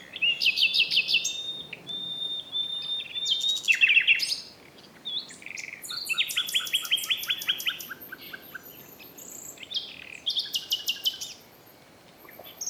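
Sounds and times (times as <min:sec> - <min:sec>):
common nightingale Luscinia megarhynchos singing: 0:00.0 - 0:04.5, 0:05.1 - 0:11.5.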